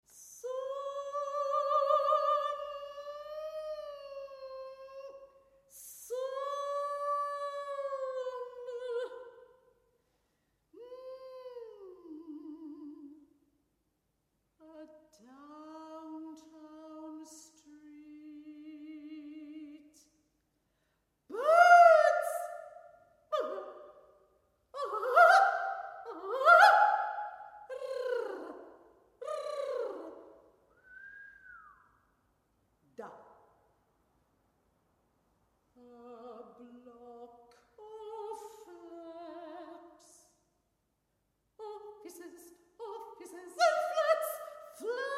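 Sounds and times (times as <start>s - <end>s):
solo soprano singing: 0.1s - 9.5s, 10.8s - 13.3s, 14.6s - 20.1s, 21.3s - 22.7s, 23.3s - 24.0s, 24.8s - 30.3s, 35.8s - 40.2s, 41.6s - 45.1s.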